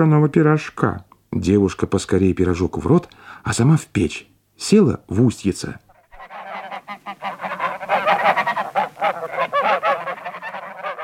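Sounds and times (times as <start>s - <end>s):
speech: 0.0s - 5.8s
flock of geese honking: 5.9s - 11.0s.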